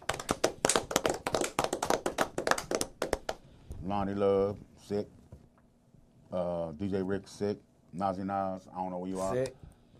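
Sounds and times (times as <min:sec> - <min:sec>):
small group clapping in a studio: 0:00.0 - 0:03.4
speech: 0:03.9 - 0:05.2, 0:06.3 - 0:09.7.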